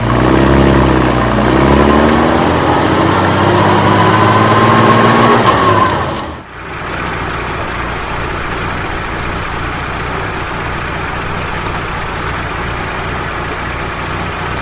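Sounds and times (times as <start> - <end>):
vehicle engine throttling in first gear: 0.0 - 14.5.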